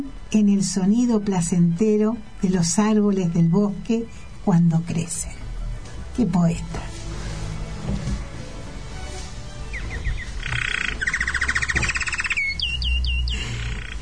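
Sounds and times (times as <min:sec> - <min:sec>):
speech: 0:00.0 - 0:05.4, 0:06.2 - 0:06.9
small birds chirping: 0:09.6 - 0:14.0.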